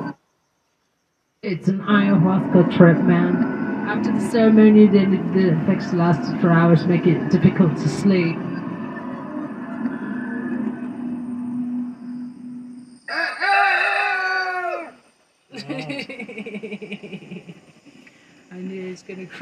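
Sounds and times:
low hum: 0:00.0 - 0:19.4
speech: 0:01.4 - 0:08.5, 0:19.1 - 0:19.4
rooster crowing: 0:13.0 - 0:15.0
laughter: 0:15.5 - 0:18.2.

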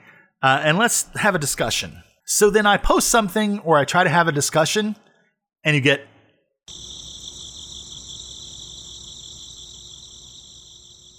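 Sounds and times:
speech: 0:00.4 - 0:05.0, 0:05.6 - 0:06.1, 0:06.7 - 0:06.9
chorus of crickets chirping: 0:06.7 - 0:11.1.

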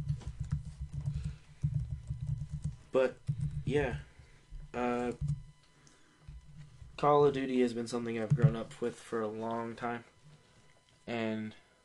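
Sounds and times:
typing on a computer keyboard: 0:00.0 - 0:03.6
speech: 0:02.9 - 0:04.1, 0:04.7 - 0:05.3, 0:07.0 - 0:10.1, 0:11.1 - 0:11.6.

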